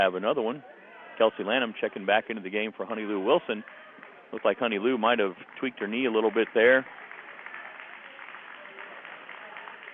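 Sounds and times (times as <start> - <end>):
speech: 0.0 - 7.0
faint murmur of voices: 0.0 - 9.9
crowd clapping in indoor gym stands: 2.9 - 9.9.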